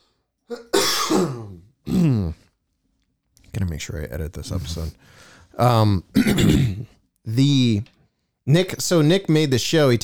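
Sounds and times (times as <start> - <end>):
speech: 0.5 - 1.7, 3.7 - 10.0
person clearing throat: 0.5 - 2.4, 6.2 - 6.9
person coughing: 0.5 - 2.4, 6.2 - 6.9.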